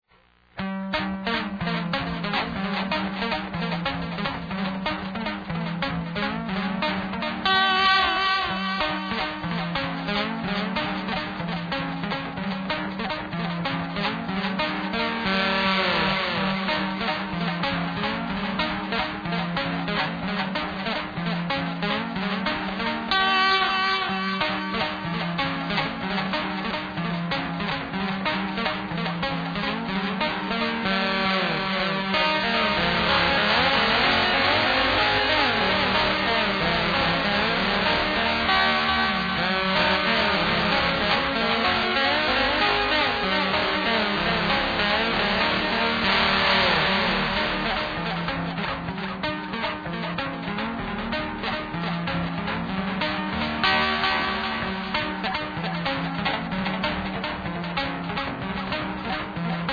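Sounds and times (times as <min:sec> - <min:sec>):
lap steel guitar: 0:00.6 - 0:59.7.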